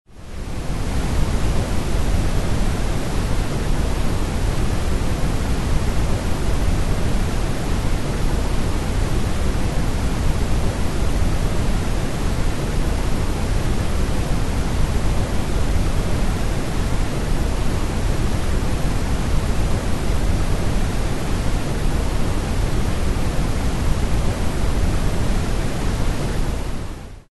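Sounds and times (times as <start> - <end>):
brown noise: 0.2 - 27.3.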